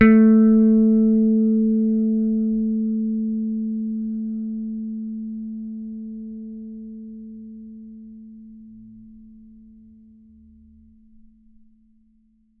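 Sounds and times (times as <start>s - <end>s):
picked bass guitar note A3: 0.0s - 5.7s.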